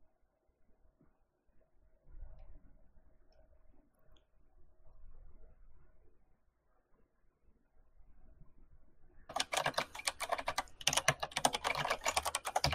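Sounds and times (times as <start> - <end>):
typing on a computer keyboard: 9.3 - 12.7.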